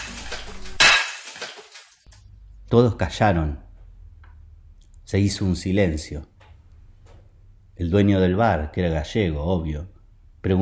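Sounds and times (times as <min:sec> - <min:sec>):
plate fragments skittering and tinkling: 0:00.0 - 0:02.1
plate shattering on a hard floor: 0:00.0 - 0:02.1
speech: 0:02.7 - 0:03.6, 0:05.1 - 0:06.3, 0:07.8 - 0:10.6.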